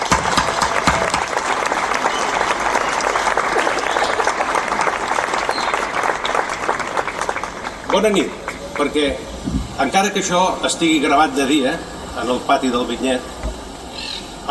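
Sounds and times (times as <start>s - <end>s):
audience applause: 0.0s - 9.1s
speech: 7.9s - 13.3s.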